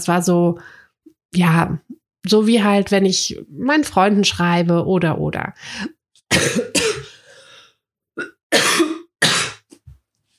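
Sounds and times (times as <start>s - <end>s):
speech: 0.0s - 7.1s
person coughing: 6.3s - 9.8s.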